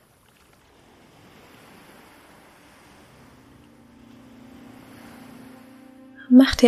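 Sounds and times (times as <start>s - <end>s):
ocean surf breaking along a shore: 0.0s - 6.6s
speech: 6.3s - 6.6s.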